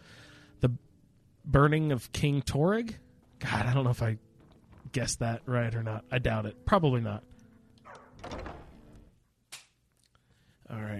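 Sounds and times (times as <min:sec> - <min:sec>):
speech: 0:00.6 - 0:04.3, 0:04.9 - 0:07.3, 0:10.7 - 0:10.9
video game door creaking and grinding open: 0:07.8 - 0:09.0
video game door settling thunk: 0:08.2 - 0:08.8.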